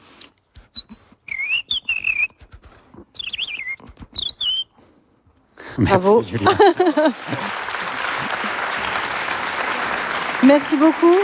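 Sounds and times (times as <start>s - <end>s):
person whistling an imitation of a European robin's song: 0.5s - 4.8s
laughter: 5.7s - 11.2s
speech: 5.8s - 7.6s, 10.4s - 11.2s.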